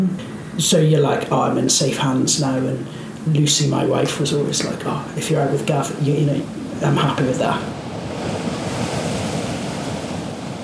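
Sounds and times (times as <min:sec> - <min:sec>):
speech: 0:00.0 - 0:08.5
rough choppy sea waves: 0:00.0 - 0:10.6
wind buffeting the microphone: 0:05.6 - 0:10.6.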